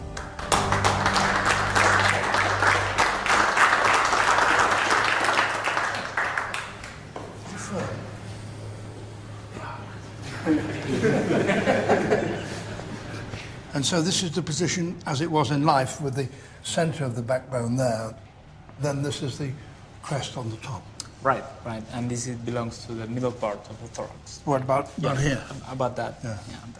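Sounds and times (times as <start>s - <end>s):
small group clapping: 0.0s - 7.4s
laughter: 10.2s - 13.5s
speech: 13.8s - 26.7s.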